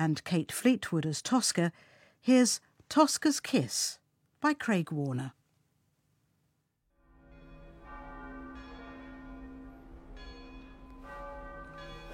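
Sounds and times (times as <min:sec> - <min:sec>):
speech: 0:00.0 - 0:05.4
church bells ringing: 0:07.0 - 0:12.1.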